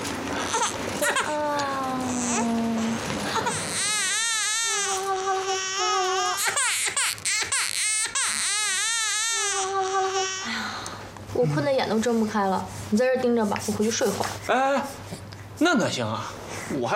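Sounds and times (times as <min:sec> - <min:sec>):
sick infant son crying loudly in a hospital: 0:00.4 - 0:10.6
speech: 0:11.5 - 0:16.9.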